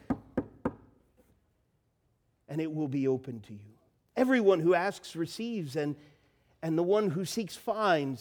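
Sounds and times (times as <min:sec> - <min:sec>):
knocking on a door: 0:00.0 - 0:00.9
speech: 0:02.5 - 0:08.1.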